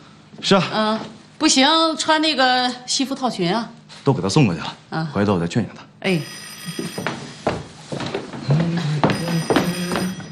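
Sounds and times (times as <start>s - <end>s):
speech: 0.4s - 7.0s
telephone ringing with bright bell-like trills: 6.0s - 8.0s, 9.0s - 10.3s.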